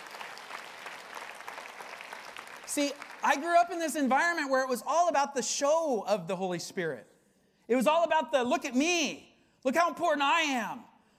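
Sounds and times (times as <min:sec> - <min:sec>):
audience clapping during a sermon: 0:00.0 - 0:03.8
speech: 0:02.8 - 0:07.1, 0:07.7 - 0:10.9.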